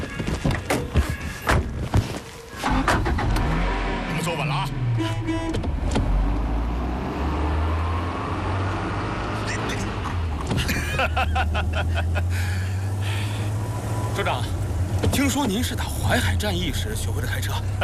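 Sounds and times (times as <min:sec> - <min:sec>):
sharp thunks and clicks: 0:00.0 - 0:03.5, 0:05.5 - 0:06.5, 0:10.0 - 0:10.8, 0:14.8 - 0:15.8
car engine turning over, revving and driving away: 0:02.6 - 0:17.8
laughter: 0:10.6 - 0:12.4.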